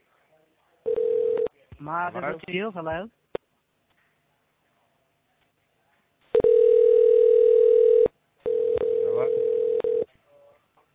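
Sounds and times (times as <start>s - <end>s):
steady electronic phone-line ringing tone: 0.9s - 1.5s, 6.4s - 10.1s
speech: 1.8s - 3.2s.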